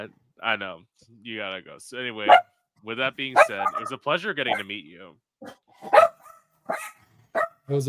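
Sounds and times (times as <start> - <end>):
speech: 0.0 - 6.1, 7.7 - 7.8
dog barking: 3.4 - 4.6, 5.4 - 7.7.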